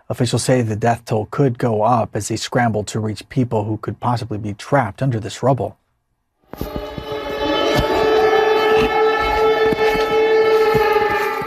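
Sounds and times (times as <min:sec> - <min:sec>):
speech: 0:00.1 - 0:05.8, 0:06.5 - 0:06.8
air raid sirens wailing in Poland during a night of strikes: 0:06.5 - 0:11.4.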